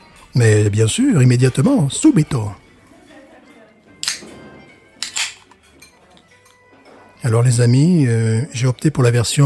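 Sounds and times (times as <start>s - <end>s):
speech: 0.4s - 2.6s, 7.3s - 9.4s
beer can cracked open with metallic snap and hiss: 4.0s - 4.2s.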